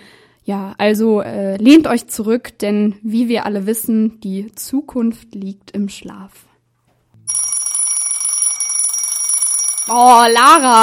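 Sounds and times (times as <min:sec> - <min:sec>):
speech: 0:00.5 - 0:06.5, 0:09.9 - 0:10.8
alarm clock ringtone ringing: 0:07.3 - 0:10.8.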